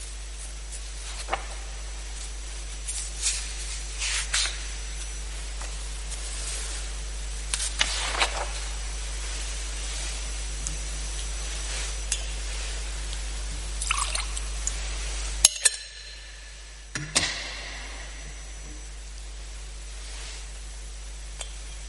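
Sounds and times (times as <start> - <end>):
steady low hum: 0.0 - 21.8
water poured into wine in a chalice: 13.8 - 14.4.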